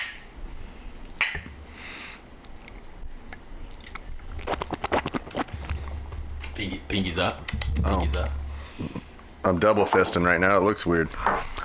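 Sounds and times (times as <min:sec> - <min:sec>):
glasses of Fireball clinking in a toast: 0:00.0 - 0:00.4, 0:01.2 - 0:01.6
soft slurping sips: 0:03.8 - 0:06.2
speech: 0:06.6 - 0:11.4.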